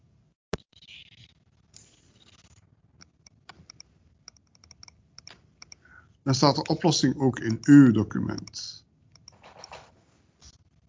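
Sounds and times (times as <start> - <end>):
computer mouse clicks on a button: 3.0 - 5.9, 7.4 - 9.8
speech: 6.3 - 8.7.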